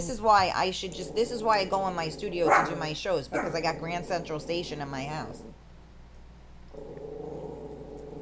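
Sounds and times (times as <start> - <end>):
speech: 0.0 - 5.6
guard dog in a house growling: 0.8 - 5.6, 6.7 - 8.2.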